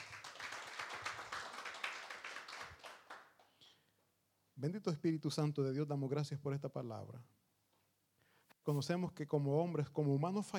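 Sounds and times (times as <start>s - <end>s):
audience applause: 0.0s - 3.4s
speech: 4.6s - 7.4s, 8.7s - 10.5s.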